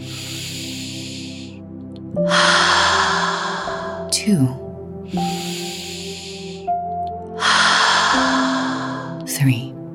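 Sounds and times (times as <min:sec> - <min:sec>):
deep breath: 0:00.0 - 0:01.6, 0:02.2 - 0:04.1, 0:05.0 - 0:06.8, 0:07.4 - 0:09.2
speech: 0:04.2 - 0:04.6.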